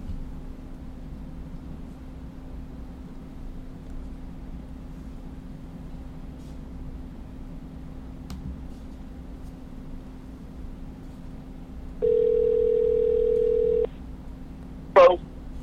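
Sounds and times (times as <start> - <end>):
low hum: 0.0 - 15.6
telephone ringing with a steady electronic tone on an incoming call: 12.0 - 13.9, 15.0 - 15.2.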